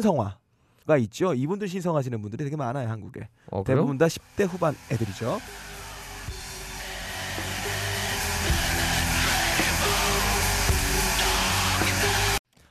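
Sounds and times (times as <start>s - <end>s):
speech: 0.0s - 5.8s
black metal song with distorted guitar and drums: 4.2s - 12.4s
dense harsh distorted guitar with low droning notes: 4.2s - 12.4s.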